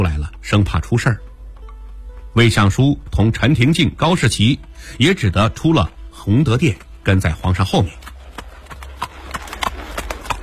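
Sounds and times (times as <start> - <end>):
speech: 0.0 - 1.3, 2.4 - 8.0
horse hooves clip-clopping as it is led: 3.6 - 10.4.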